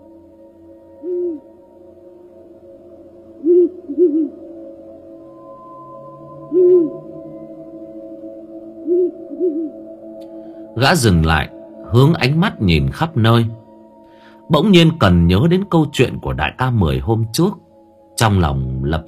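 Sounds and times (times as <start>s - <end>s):
faint steady hum: 0.0s - 19.0s
owl hooting in a forest: 0.9s - 1.9s, 3.3s - 15.0s
speech: 10.8s - 13.6s, 14.5s - 17.6s, 18.2s - 19.0s.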